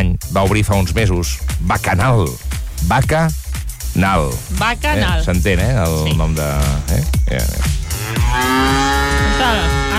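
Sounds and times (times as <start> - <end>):
speech: 0.4 - 3.4, 4.0 - 9.8
cows mooing on a farm: 7.8 - 9.9.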